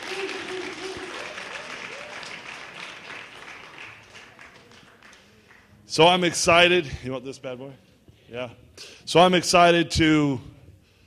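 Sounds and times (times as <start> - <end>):
whoops and cheers from the crowd: 0.0 - 2.5
crowd applauding with dense continuous clapping: 0.0 - 5.6
speech: 5.9 - 10.5.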